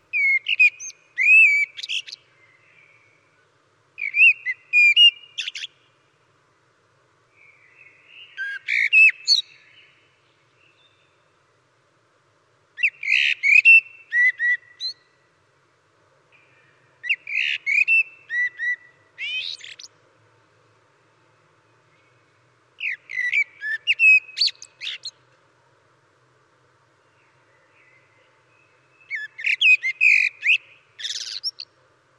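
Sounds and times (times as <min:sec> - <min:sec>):
birds: 0:00.0 - 0:11.8, 0:12.7 - 0:32.1
blackbird singing: 0:00.1 - 0:03.4, 0:04.0 - 0:06.0, 0:07.4 - 0:11.2, 0:12.8 - 0:15.2, 0:16.4 - 0:19.9, 0:21.9 - 0:25.2, 0:27.0 - 0:31.7.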